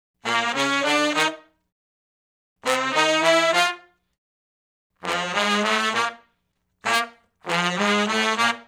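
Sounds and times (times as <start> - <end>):
R&B horn section riff in unison in B flat: 0.2 - 1.5, 2.6 - 3.9, 5.0 - 8.6.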